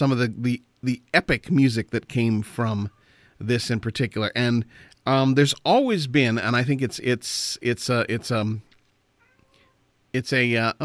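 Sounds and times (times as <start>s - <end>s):
speech: 0.0s - 8.7s, 10.1s - 10.8s
cat meowing: 9.2s - 9.8s.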